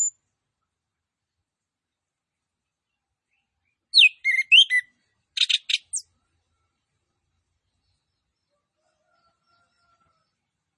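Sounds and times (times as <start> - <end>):
Orange-headed thrush song phrase of slurred whistles: 3.9 - 6.0.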